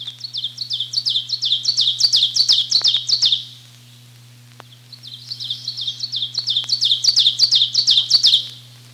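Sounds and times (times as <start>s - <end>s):
ovenbird singing teacher-teacher song: 0.0s - 4.0s, 4.7s - 8.7s
faint steady low hum: 0.0s - 8.9s.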